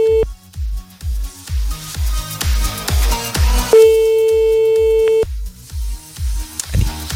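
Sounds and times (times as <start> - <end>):
telephone ringback tone: 0.0 - 0.2, 3.8 - 5.2
loud thumping rhythmic beat: 0.0 - 7.1.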